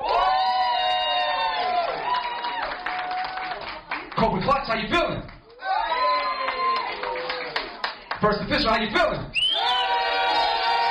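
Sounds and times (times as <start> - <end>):
audience cheering and whooping at a live launch event: 0.0 - 3.7, 5.5 - 7.8, 9.4 - 10.8
audience clapping at a live launch event: 0.0 - 4.3, 5.3 - 8.2
speech: 4.6 - 5.3, 8.2 - 9.7.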